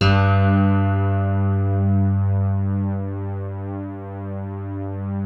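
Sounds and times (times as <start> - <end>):
electric piano ballad: 0.0 - 5.1.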